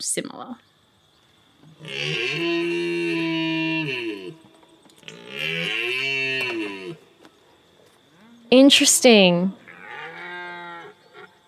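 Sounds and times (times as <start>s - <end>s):
speech: 0.0s - 0.8s, 1.6s - 3.2s, 8.5s - 9.6s
red stag bellowing roars: 1.6s - 7.2s, 9.6s - 11.4s.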